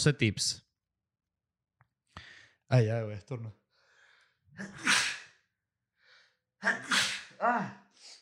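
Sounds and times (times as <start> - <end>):
speech: 0.0 - 0.6, 2.7 - 3.6, 4.6 - 5.1, 6.6 - 7.8
person sneezing: 4.6 - 5.3, 6.6 - 7.4.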